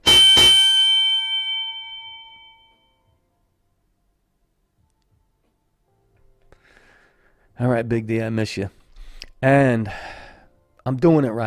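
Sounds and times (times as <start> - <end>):
bell struck and ringing with a bright metallic tone: 0.0 - 3.1
speech: 7.6 - 8.8, 9.4 - 10.2, 10.8 - 11.4.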